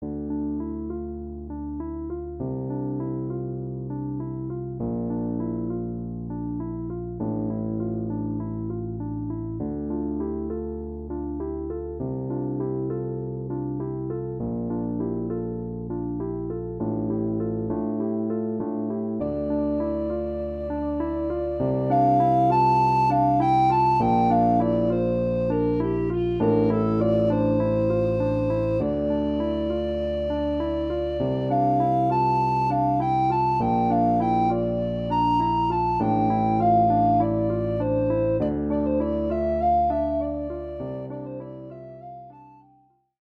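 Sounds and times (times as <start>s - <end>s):
piano: 0.0s - 43.0s
treble recorder: 19.2s - 42.6s.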